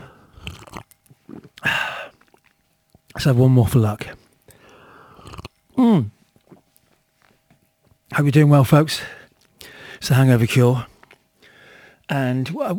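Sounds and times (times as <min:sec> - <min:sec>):
sips and gulps: 0:00.0 - 0:03.1, 0:04.6 - 0:05.6, 0:06.4 - 0:07.0
wet mouth noises: 0:00.0 - 0:03.2, 0:05.1 - 0:07.4
exaggerated slurp of iced oat-milk latte through a straw: 0:00.3 - 0:01.6, 0:05.1 - 0:05.5
speech: 0:03.2 - 0:04.2, 0:08.2 - 0:09.2, 0:10.0 - 0:10.9, 0:12.1 - 0:12.7
person saying a satisfied aah: 0:05.8 - 0:06.1.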